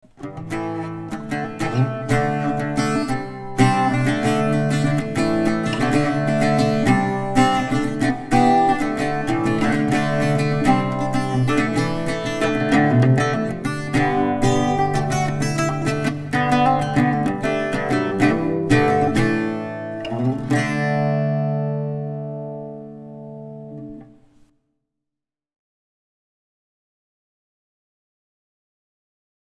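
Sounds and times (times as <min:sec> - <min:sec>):
bouzouki: 0:00.0 - 0:24.4.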